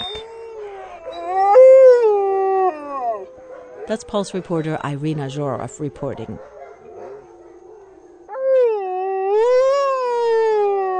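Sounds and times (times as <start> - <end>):
dog giving a strained wavering howl: 0.0 - 4.6, 6.8 - 10.9
speech: 3.9 - 6.5.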